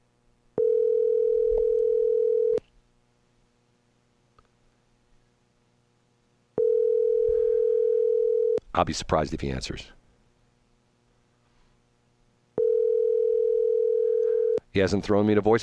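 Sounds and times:
outgoing phone call ringback tone, a steady electronic burr: 0:00.6 - 0:02.6, 0:06.6 - 0:08.6, 0:12.6 - 0:14.6
speech: 0:08.8 - 0:10.0, 0:14.8 - 0:15.6.

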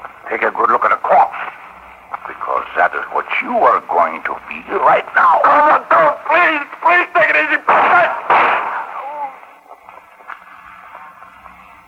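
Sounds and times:
speech: 0:00.3 - 0:00.9, 0:02.9 - 0:08.2
gunshot: 0:07.7 - 0:09.0.

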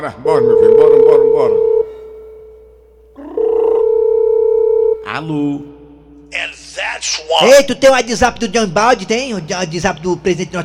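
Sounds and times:
speech: 0:00.0 - 0:01.7, 0:05.2 - 0:05.7, 0:06.3 - 0:10.6
telephone tone while a call is being placed: 0:00.3 - 0:05.1.

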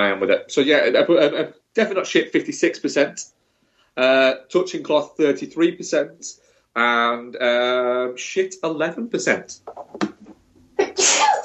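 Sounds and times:
speech: 0:00.0 - 0:03.4, 0:04.0 - 0:10.1
loud sneeze: 0:10.8 - 0:11.4.

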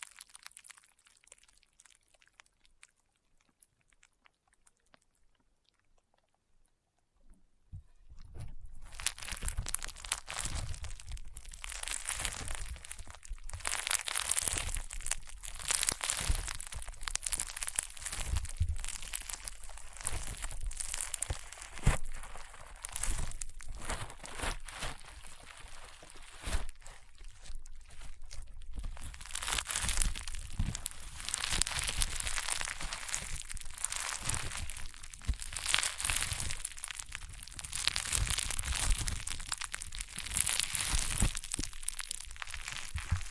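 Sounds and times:
crunchy popping slime being squeezed: 0:00.0 - 0:02.6, 0:08.3 - 0:43.2
soft low thumps: 0:07.7 - 0:32.4.

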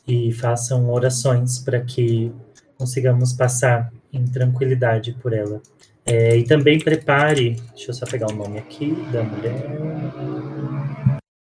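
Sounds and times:
speech: 0:00.1 - 0:10.3
passing car engine droning with a low rumbling hum: 0:08.1 - 0:11.2.

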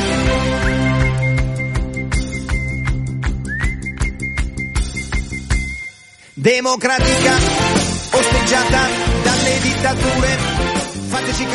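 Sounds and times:
band music with regular percussive hits: 0:00.0 - 0:06.4, 0:07.0 - 0:11.5
person whistling a single-note tune: 0:00.5 - 0:06.3
speech: 0:06.4 - 0:11.5.

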